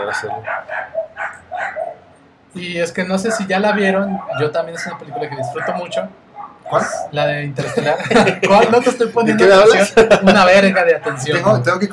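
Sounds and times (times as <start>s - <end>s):
speech: 0.0s - 1.0s, 2.5s - 11.9s
dogs barking: 0.0s - 2.2s, 3.2s - 7.2s, 10.0s - 11.4s
laughter: 7.6s - 11.6s.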